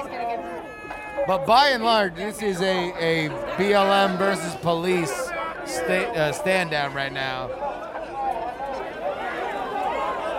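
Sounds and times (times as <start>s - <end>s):
protest crowd booing: 0.0s - 10.3s
speech: 1.3s - 7.6s.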